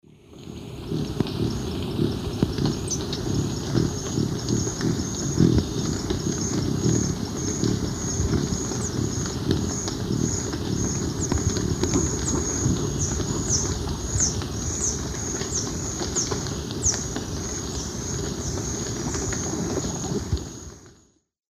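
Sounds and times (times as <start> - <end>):
Threnetes niger wing hum: 0.4 - 20.8
Threnetes niger flight calls in the Eastern Lowlands of South America: 0.9 - 20.8.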